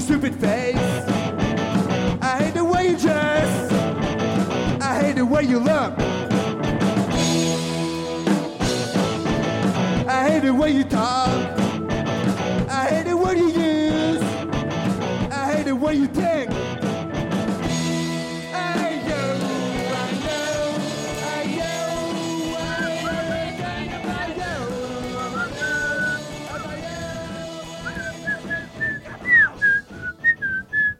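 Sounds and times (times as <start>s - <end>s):
dense musical backing: 0.0s - 30.9s
speech: 0.2s - 0.8s, 5.4s - 6.0s, 10.4s - 11.6s
person whistling a wandering melodic tune: 22.4s - 30.9s.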